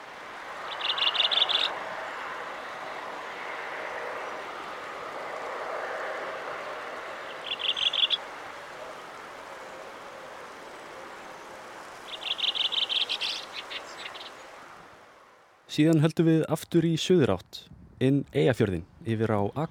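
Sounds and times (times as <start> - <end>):
redwing song in a local dialect of rising, trilling repetitions: 0.0 - 1.8, 2.4 - 15.0
hiss: 0.0 - 19.6
speech: 15.8 - 19.6.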